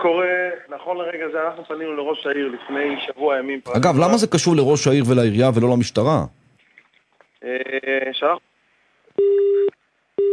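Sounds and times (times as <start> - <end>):
speech: 0.0 - 6.4, 7.4 - 8.5, 9.2 - 10.3
telephone busy tone after a call disconnects: 9.2 - 10.3.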